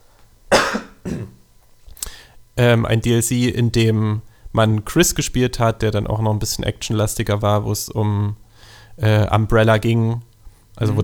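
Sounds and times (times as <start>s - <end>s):
person coughing: 0.5s - 1.4s
speech: 2.6s - 11.0s.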